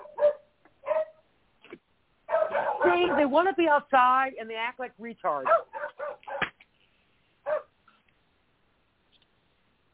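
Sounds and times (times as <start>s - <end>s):
dog barking with sharp yips: 0.0s - 1.2s, 2.3s - 3.3s, 5.4s - 6.5s, 7.4s - 7.7s
speech: 2.9s - 5.7s.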